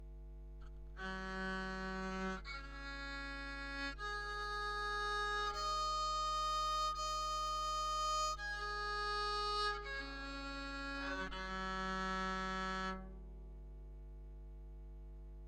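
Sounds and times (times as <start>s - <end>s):
electric violin: 1.0s - 13.1s.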